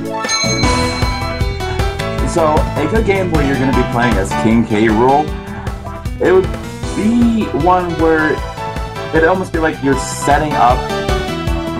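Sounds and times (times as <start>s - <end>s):
bell struck repeatedly: 0.0s - 9.4s
speech: 2.4s - 5.4s, 6.2s - 8.5s, 9.1s - 11.0s.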